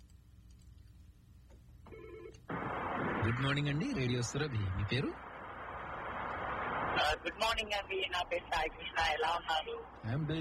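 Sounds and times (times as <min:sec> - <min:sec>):
faint low hum: 0:00.0 - 0:10.4
telephone ringing for an incoming caller to a radio phone-in: 0:01.9 - 0:02.4
speech: 0:03.3 - 0:05.3, 0:07.0 - 0:10.4.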